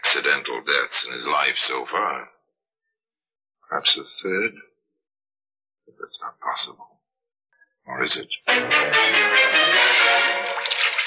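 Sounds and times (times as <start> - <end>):
speech: 0.1 - 2.4, 3.7 - 4.7, 5.9 - 7.0, 7.9 - 10.4
hot water running and splashing into a bathtub: 10.2 - 11.0.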